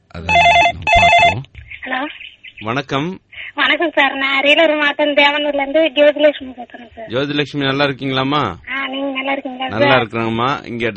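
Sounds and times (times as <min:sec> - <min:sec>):
telephone ringing with an incoming call: 0:00.3 - 0:01.4
speech: 0:02.6 - 0:10.9.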